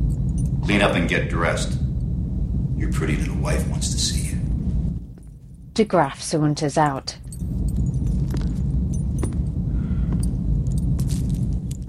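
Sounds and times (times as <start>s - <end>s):
metal chains rattling as a prisoner wrenches them in fury: 0.0s - 0.6s, 7.1s - 11.8s
steady low rumble: 0.0s - 11.8s
speech: 0.7s - 1.8s, 2.8s - 4.4s, 5.8s - 7.8s.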